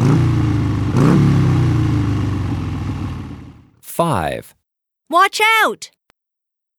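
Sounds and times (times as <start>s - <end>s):
motorbike engine revving: 0.0s - 3.5s
speech: 4.0s - 6.0s.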